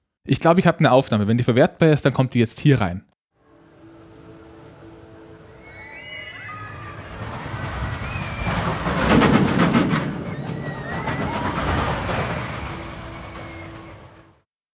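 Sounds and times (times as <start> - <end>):
speech: 0.2 - 3.1
roller coaster deep rumble through loop: 3.5 - 14.4
high metallic squeals and whistling tones: 4.1 - 14.3.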